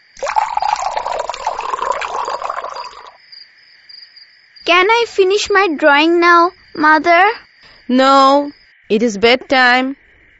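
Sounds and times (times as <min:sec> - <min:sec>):
water pouring into a glass: 0:00.0 - 0:03.2
speech: 0:04.7 - 0:10.0.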